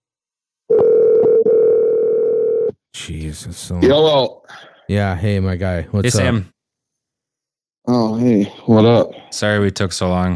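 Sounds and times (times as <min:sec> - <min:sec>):
telephone dial tone: 0:00.7 - 0:02.7
speech: 0:03.0 - 0:06.5, 0:07.9 - 0:10.3.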